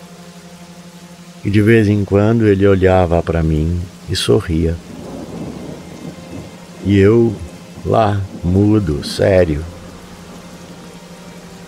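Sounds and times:
rain pouring during a thunderstorm: 0.0s - 11.6s
speech: 1.4s - 4.9s, 6.8s - 9.7s
deep continuous thunder rumble: 4.8s - 10.8s.

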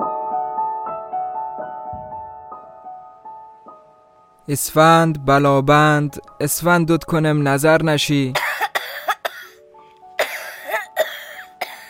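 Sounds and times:
speech: 4.5s - 8.5s
short dry coughs: 8.4s - 9.6s, 10.2s - 11.8s.

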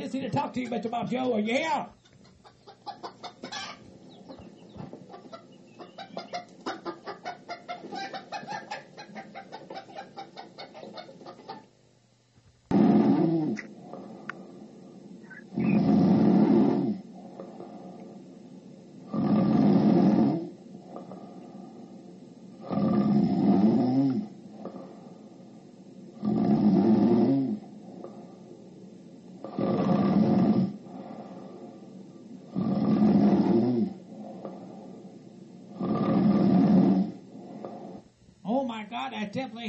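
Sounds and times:
speech: 0.1s - 2.1s, 39.1s - 39.6s
man snoring while napping: 12.7s - 14.6s, 15.5s - 18.0s, 19.0s - 21.4s, 22.6s - 25.1s, 26.1s - 28.1s, 29.4s - 31.7s, 32.4s - 34.8s, 35.7s - 38.1s.

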